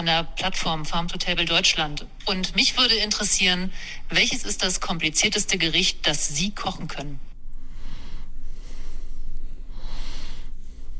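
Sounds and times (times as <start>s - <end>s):
speech: 0.0s - 7.3s
low steady rumble: 0.0s - 10.9s
heavy snorting exhales through the nose: 7.6s - 10.9s.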